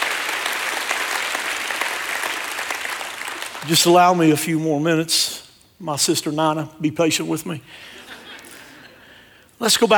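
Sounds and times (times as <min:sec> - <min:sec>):
church audience clapping: 0:00.0 - 0:04.3
speech: 0:03.6 - 0:08.1, 0:09.6 - 0:09.9
laughter: 0:07.8 - 0:09.2.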